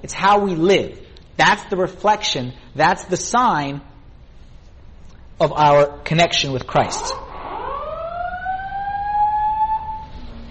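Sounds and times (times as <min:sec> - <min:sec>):
speech: 0:00.0 - 0:03.9, 0:05.4 - 0:07.2
fire alarm long electronic tone: 0:07.1 - 0:10.4.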